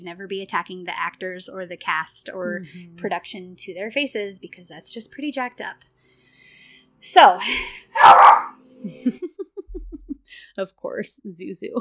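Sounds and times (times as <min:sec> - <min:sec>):
speech: 0:00.0 - 0:05.9, 0:07.0 - 0:09.4, 0:10.6 - 0:11.7
dog barking: 0:08.0 - 0:08.6
laughter: 0:08.8 - 0:10.2.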